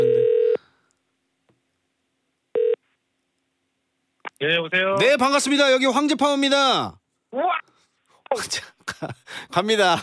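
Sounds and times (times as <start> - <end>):
short electronic telephone tone of a radio call-in connecting: 0.0 - 0.6, 2.6 - 2.8
speech: 4.4 - 7.5, 8.4 - 10.0.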